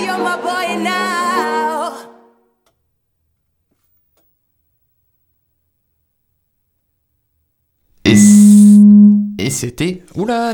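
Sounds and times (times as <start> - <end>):
dub siren sound effect with loud buzzy electronic tone: 8.1 - 9.4
speech: 9.4 - 10.5.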